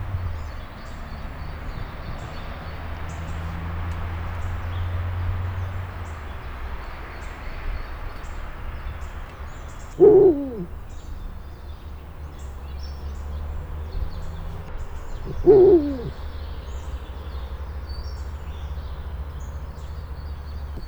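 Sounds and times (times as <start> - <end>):
low traffic drone from a public road: 0.0 - 20.8
captive Eurasian eagle-owl giving a rough hooting call in a zoo: 9.9 - 10.9, 15.2 - 16.2.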